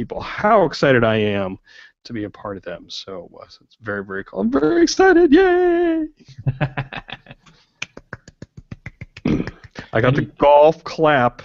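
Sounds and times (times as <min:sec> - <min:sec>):
speech: 0:00.0 - 0:07.7, 0:09.9 - 0:11.4
laughter: 0:06.3 - 0:10.4
hands clapping: 0:07.4 - 0:10.0.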